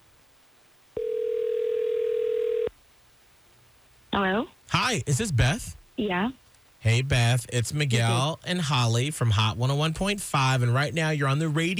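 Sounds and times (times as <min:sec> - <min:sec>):
telephone dial tone: 0:01.0 - 0:02.7
speech: 0:04.2 - 0:11.7.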